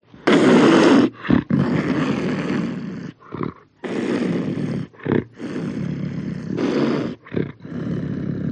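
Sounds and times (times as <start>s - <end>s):
panther snarling and growling: 0.1s - 8.5s.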